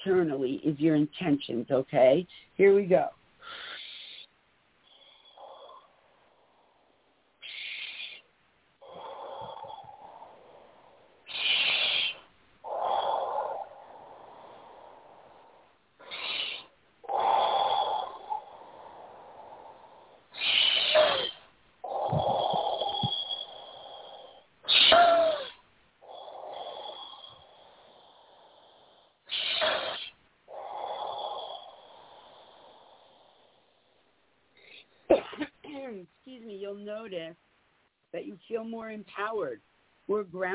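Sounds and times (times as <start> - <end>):
speech: 0.0 - 3.2, 40.3 - 40.5
deep breathing in and out during a guided breathing exercise: 3.4 - 35.1.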